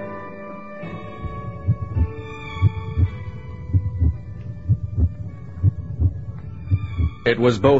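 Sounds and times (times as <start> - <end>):
heartbeat heard through an audio sensor: 1.2 - 7.2
speech: 7.3 - 7.7.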